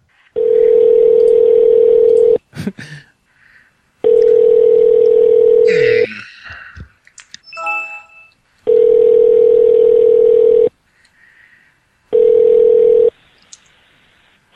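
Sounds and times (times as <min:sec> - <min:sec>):
long steady phone ringback tones: 0:00.4 - 0:02.4, 0:04.0 - 0:05.7, 0:07.5 - 0:10.7, 0:12.1 - 0:13.1
faint clicks and phone handling noise: 0:13.3 - 0:13.8.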